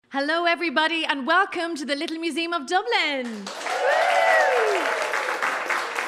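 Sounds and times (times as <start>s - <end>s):
speech: 0.1s - 4.0s
audience applauding at a live event in a small Dublin museum: 3.2s - 6.0s
falling whoop or whistle from the audience: 3.8s - 5.1s.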